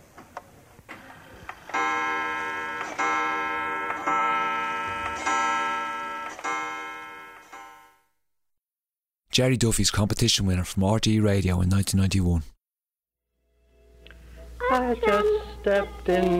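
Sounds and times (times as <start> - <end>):
kitchen clock ticking: 1.7 - 7.9
pulsing ringing tone: 1.7 - 8.0
speech: 9.4 - 12.6, 15.6 - 16.3.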